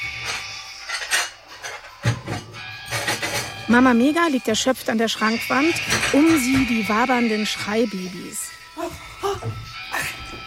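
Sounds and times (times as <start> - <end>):
plates and cutlery clattering in a video game: 0.0 - 7.5
speech: 3.7 - 8.6.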